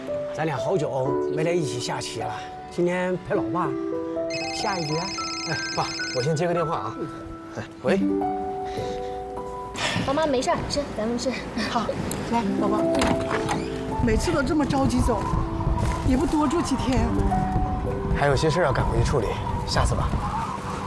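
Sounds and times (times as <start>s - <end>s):
warm music: 0.0s - 20.8s
phone electronic melody ringtone: 4.3s - 7.0s.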